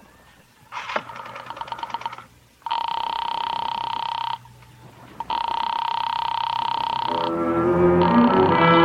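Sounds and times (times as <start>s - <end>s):
telephone line clicks and rattling dial bursts: 0.9s - 4.5s, 5.2s - 7.3s
loud steady buzzing telephone ring tone: 1.1s - 4.5s, 5.2s - 8.7s.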